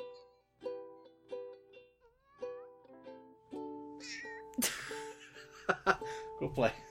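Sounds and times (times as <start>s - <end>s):
cat meowing: 2.0s - 3.0s
music with sustained notes: 2.4s - 6.8s
speech: 4.0s - 4.9s, 5.7s - 6.8s.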